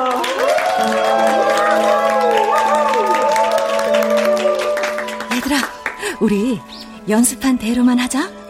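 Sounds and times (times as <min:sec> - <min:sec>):
voices cheering and whooping: 0:00.0 - 0:05.1
large audience clapping: 0:00.0 - 0:06.2
speech: 0:06.2 - 0:08.4.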